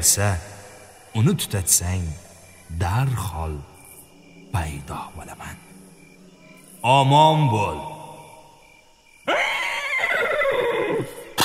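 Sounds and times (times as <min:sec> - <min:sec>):
speech: 0:00.0 - 0:00.5, 0:01.2 - 0:03.7, 0:04.5 - 0:05.7, 0:06.8 - 0:07.9
horse neighing: 0:09.3 - 0:11.4.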